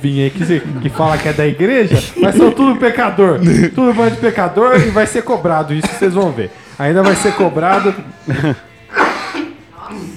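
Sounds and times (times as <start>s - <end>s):
speech: 0.0s - 8.7s
laughter: 0.0s - 10.1s
person coughing: 1.0s - 2.8s, 3.4s - 6.3s, 7.0s - 9.6s.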